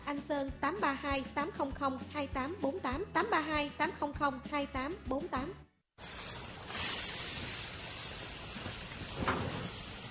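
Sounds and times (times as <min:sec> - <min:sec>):
speech: 0:00.1 - 0:06.2
steady dense rain hissing: 0:06.0 - 0:10.0.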